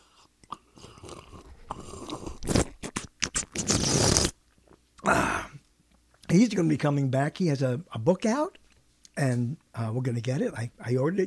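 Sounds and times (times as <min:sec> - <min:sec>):
noisy slurps of someone sipping hot coffee: 0:00.0 - 0:04.4
small mouth and swallow sounds: 0:00.2 - 0:03.8
speech: 0:06.3 - 0:08.6, 0:09.2 - 0:11.2.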